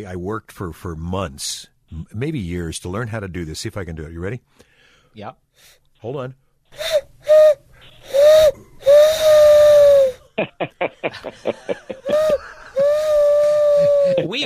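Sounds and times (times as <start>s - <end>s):
speech: 0.0s - 6.8s, 10.4s - 11.9s, 14.1s - 14.4s
man vocally imitating a steam train whistle: 6.8s - 10.2s, 12.1s - 14.3s
laughter: 10.4s - 12.9s, 13.8s - 14.4s.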